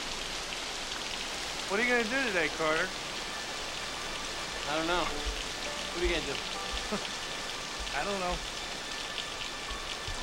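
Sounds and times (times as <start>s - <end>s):
steady rain striking a surface: 0.0s - 10.2s
speech: 1.7s - 3.0s, 4.7s - 5.4s, 6.0s - 7.2s, 8.0s - 8.6s
soft low thumps: 5.0s - 7.2s.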